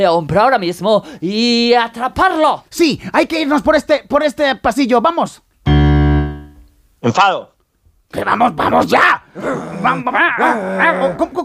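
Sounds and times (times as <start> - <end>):
speech: 0.0 - 5.5, 7.0 - 7.5, 8.1 - 11.4
angry rabid dog growling and barking: 8.7 - 11.4.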